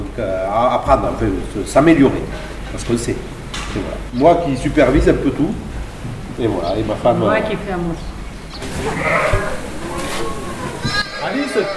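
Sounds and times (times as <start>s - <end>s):
steady low farmyard noise: 0.0s - 11.7s
speech: 0.2s - 8.1s, 8.7s - 9.6s, 11.2s - 11.7s
ewe bleating before giving birth: 8.7s - 11.7s.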